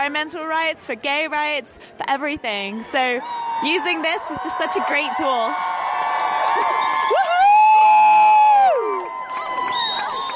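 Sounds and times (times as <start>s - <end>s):
speech: 0.0s - 5.8s
large protest crowd shouting and cheering in response to a speech: 2.8s - 10.3s.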